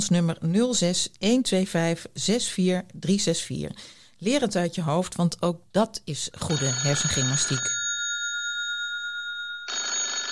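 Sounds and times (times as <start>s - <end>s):
speech: 0.0s - 7.8s
telephone ringing with an electronic tone: 6.4s - 10.3s.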